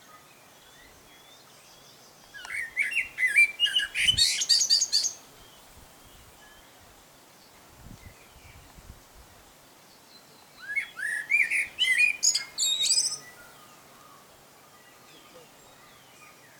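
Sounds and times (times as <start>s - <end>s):
male common blackbird singing whistled warbling phrases: 0.1s - 5.2s, 10.6s - 16.5s.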